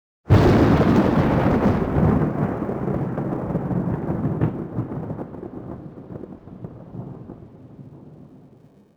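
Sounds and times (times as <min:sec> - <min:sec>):
thunder strike: 0:00.3 - 0:05.5.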